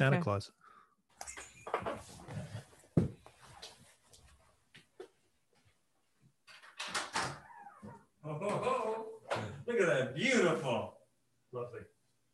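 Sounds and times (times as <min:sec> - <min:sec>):
speech: 0:00.0 - 0:00.6, 0:01.2 - 0:02.2, 0:08.3 - 0:08.8, 0:09.7 - 0:11.9
shuffling and handling noises: 0:01.8 - 0:05.8.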